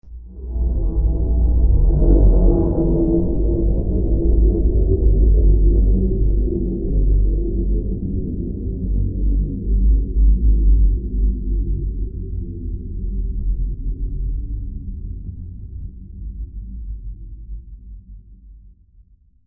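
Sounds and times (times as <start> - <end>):
extremely low and long scary transition sound: 0.0 - 19.0.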